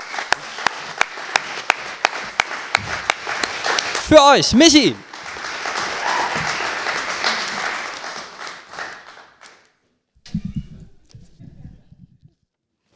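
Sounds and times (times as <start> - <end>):
crowd applauding: 0.0 - 9.8
speech: 4.1 - 5.1.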